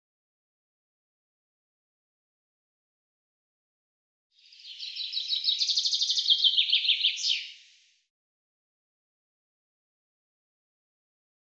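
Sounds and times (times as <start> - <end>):
common chaffinch singing: 4.5 - 7.8.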